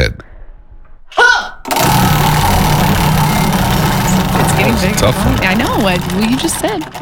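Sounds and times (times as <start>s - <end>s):
prize wheel spinning with whirring clatter of ticks: 1.7s - 6.9s
speech: 4.8s - 6.9s.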